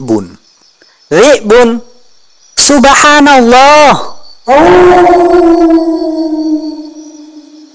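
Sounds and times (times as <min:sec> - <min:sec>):
speech: 0:00.0 - 0:00.4, 0:01.1 - 0:01.9, 0:02.6 - 0:06.1
wolf howling: 0:04.5 - 0:07.7.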